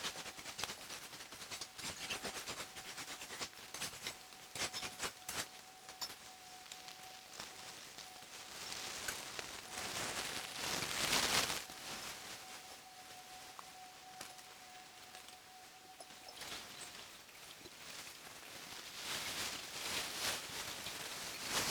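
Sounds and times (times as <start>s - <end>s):
crinkly plastic bags rustling: 0.0s - 21.6s
thin sustained tone: 3.9s - 17.5s.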